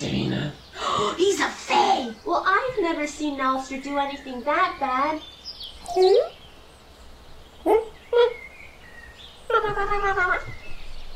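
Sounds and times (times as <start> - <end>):
speech: 0.0 - 6.4, 7.6 - 8.4, 9.5 - 10.6
puppy barking: 5.8 - 6.3, 7.6 - 8.0
puppy whining yelp: 5.8 - 6.4, 7.6 - 8.4.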